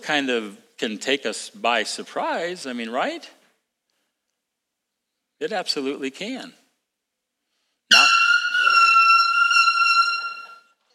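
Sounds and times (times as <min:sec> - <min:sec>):
speech: 0:00.0 - 0:03.4, 0:05.4 - 0:06.6
air horn blast: 0:07.9 - 0:10.7.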